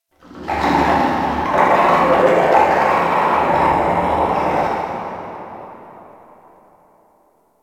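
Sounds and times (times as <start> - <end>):
distant creature snarl: 0.2 - 6.7.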